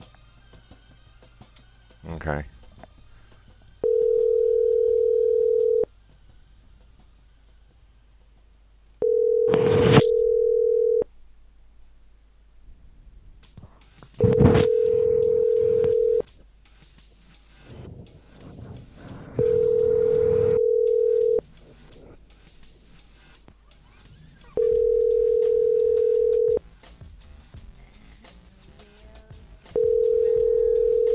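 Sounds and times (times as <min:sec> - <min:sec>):
speech: 0:02.1 - 0:02.6
telephone ringback tone for an unanswered call: 0:03.8 - 0:05.9, 0:09.0 - 0:11.1, 0:14.2 - 0:16.2, 0:19.4 - 0:21.4, 0:24.6 - 0:26.6, 0:29.8 - 0:31.1.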